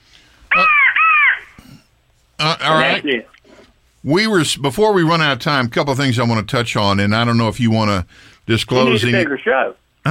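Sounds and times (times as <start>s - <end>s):
harsh caws from a crow call: 0.5s - 1.6s
speech: 2.4s - 3.4s, 4.0s - 10.0s.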